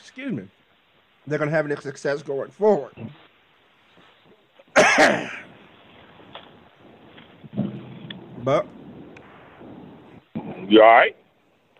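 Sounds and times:
quiet hiss: 0:00.0 - 0:11.7
speech: 0:00.2 - 0:00.6, 0:01.2 - 0:03.2, 0:05.0 - 0:05.4, 0:08.4 - 0:08.8, 0:10.7 - 0:11.2
person coughing: 0:04.7 - 0:05.5.

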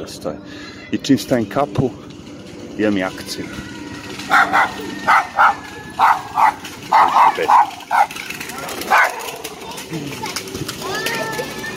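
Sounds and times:
speech: 0:00.0 - 0:02.1, 0:02.8 - 0:08.3
steady noise: 0:00.0 - 0:11.7
dog barking: 0:04.3 - 0:08.2, 0:08.9 - 0:09.2.

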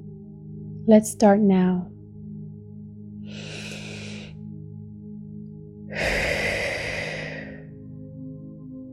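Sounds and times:
speech: 0:00.8 - 0:01.9
deep belly breath with long airy exhale: 0:03.3 - 0:04.3, 0:05.9 - 0:07.7.

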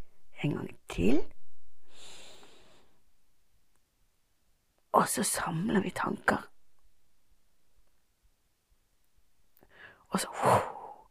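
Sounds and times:
speech: 0:00.4 - 0:01.4, 0:05.0 - 0:06.5, 0:10.1 - 0:10.7
deep breath drawn in through the nose: 0:01.8 - 0:03.0.

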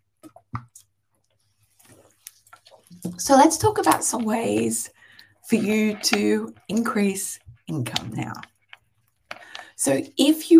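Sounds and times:
person drinking water: 0:00.2 - 0:03.3, 0:04.4 - 0:06.4, 0:08.2 - 0:09.8
speech: 0:02.9 - 0:08.5, 0:09.8 - 0:10.5.

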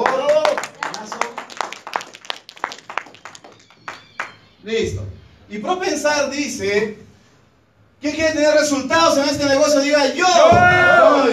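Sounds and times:
audience applause: 0:00.0 - 0:04.4
speech: 0:04.6 - 0:07.1, 0:08.0 - 0:11.3.

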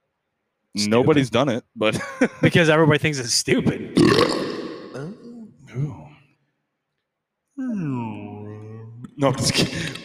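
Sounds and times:
speech: 0:00.7 - 0:05.2, 0:09.2 - 0:10.0
weak forced burp: 0:04.0 - 0:05.4.

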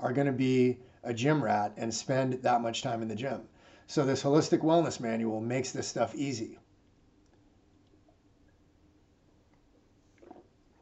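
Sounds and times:
speech: 0:00.0 - 0:06.6
faint steady hiss: 0:00.0 - 0:10.8
person sipping water: 0:10.1 - 0:10.8
soft gulp of water: 0:10.2 - 0:10.8.

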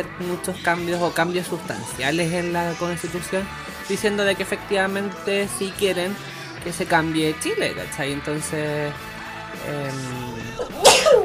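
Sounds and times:
brief hesitant vocal sound: 0:00.0 - 0:11.2
speech: 0:00.0 - 0:11.2
single loud sneeze: 0:10.5 - 0:11.2.

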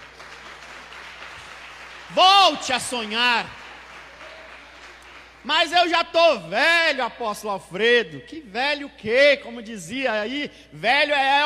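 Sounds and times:
audience applauding: 0:00.0 - 0:05.5
speech: 0:02.1 - 0:03.6, 0:05.4 - 0:11.4.

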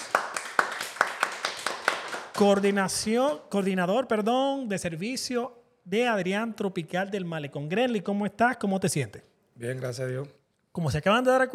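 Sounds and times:
small group of people clapping: 0:00.0 - 0:03.5
speech: 0:02.4 - 0:11.5.

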